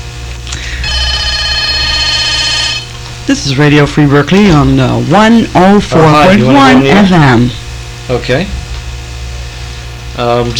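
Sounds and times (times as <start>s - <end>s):
low hum: 0.0s - 10.2s
telephone ringing with a bright electronic tone: 0.7s - 3.0s
speech: 3.3s - 8.6s, 10.2s - 10.5s.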